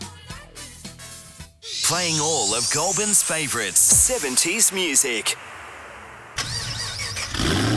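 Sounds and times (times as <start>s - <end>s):
car engine cranking, starting and revving: 1.8s - 7.7s
speech: 1.9s - 5.6s.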